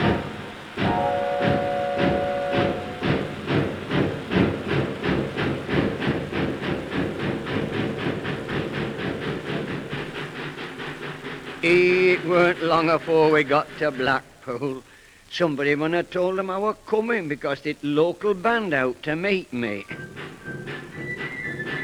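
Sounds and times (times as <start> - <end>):
steam train whistle: 0.0 - 3.6, 19.8 - 21.8
steam train pulling away from a station: 0.0 - 21.8
speech: 11.7 - 20.3.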